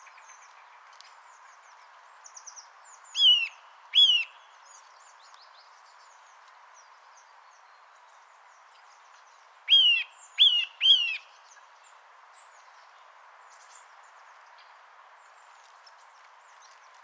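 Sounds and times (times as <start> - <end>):
Eurasian nuthatch (Sitta europaea) whistled calls: 3.2 - 4.4, 9.7 - 11.3.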